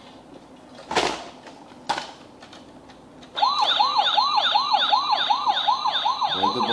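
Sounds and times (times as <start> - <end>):
police car siren wailing: 3.4 - 6.7.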